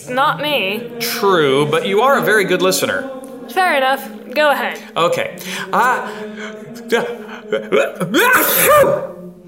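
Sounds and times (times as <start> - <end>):
speech: 0.0 - 9.4
person sneezing: 8.2 - 9.1.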